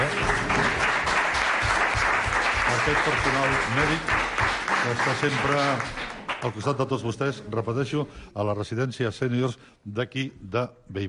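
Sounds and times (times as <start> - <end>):
audience applauding at an event in a senior residence: 0.0 - 6.8
speech: 2.8 - 11.0.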